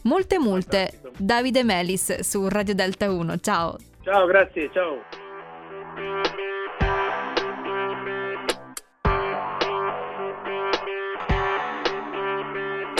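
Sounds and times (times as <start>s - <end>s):
speech: 0.0s - 5.2s
heavily distorted effects-laden guitar chords: 4.5s - 12.9s.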